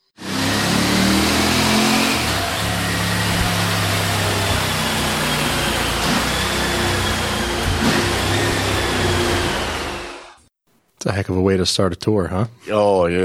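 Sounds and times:
motorcycle engine running hard on a dyno: 0:00.1 - 0:10.2
speech: 0:11.0 - 0:13.2.

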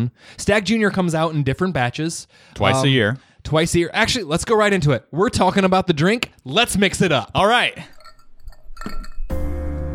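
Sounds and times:
speech: 0:00.0 - 0:08.0, 0:08.8 - 0:09.1
Glencairn glass and bourbon bottle clinking: 0:07.6 - 0:09.6.

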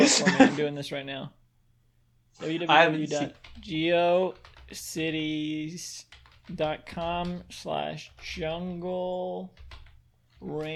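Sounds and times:
laughter: 0:00.0 - 0:00.8
speech: 0:00.1 - 0:01.4, 0:02.4 - 0:09.7, 0:10.4 - 0:10.7
computer keyboard typing a web address: 0:03.1 - 0:10.7.

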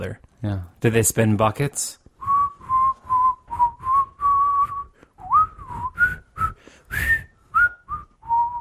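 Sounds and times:
speech: 0:00.0 - 0:02.0
person whistling a bright wandering tune: 0:02.2 - 0:08.5.

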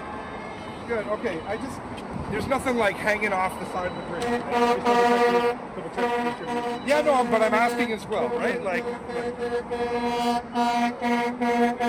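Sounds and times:
speech: 0:00.9 - 0:11.8
loud vehicle horn honking: 0:04.1 - 0:11.8.

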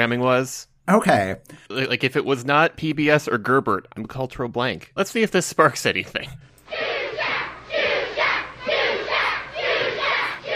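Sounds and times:
speech: 0:00.0 - 0:06.8
large crowd screaming and cheering for a performer: 0:06.7 - 0:10.5.

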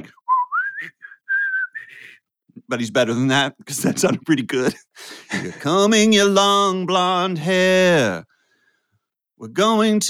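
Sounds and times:
man whistling a slow ballad melody on a cavernous subway platform: 0:00.2 - 0:02.2
speech: 0:02.7 - 0:08.3, 0:09.4 - 0:10.0
laughter: 0:05.2 - 0:05.7.

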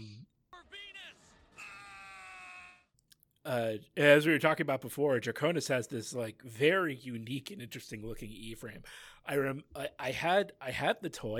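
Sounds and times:
person screaming a raw battle cry: 0:00.0 - 0:02.9
speech: 0:03.5 - 0:11.3.

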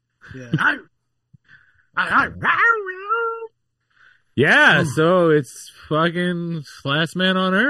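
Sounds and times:
speech: 0:00.3 - 0:00.9, 0:02.0 - 0:03.0, 0:04.4 - 0:07.6
person imitating a dog with bark-like yelps and a falling whine: 0:02.0 - 0:03.5.

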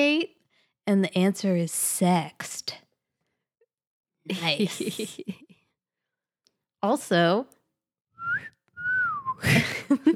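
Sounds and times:
speech: 0:00.0 - 0:02.8, 0:04.2 - 0:05.5, 0:06.8 - 0:07.6
person whistling melodic phrases: 0:08.2 - 0:09.6.

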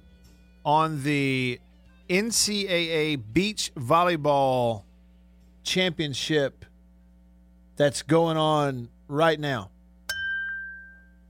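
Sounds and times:
speech: 0:00.6 - 0:04.9, 0:05.6 - 0:06.7, 0:07.8 - 0:09.7
single studio bell struck: 0:10.1 - 0:11.2.

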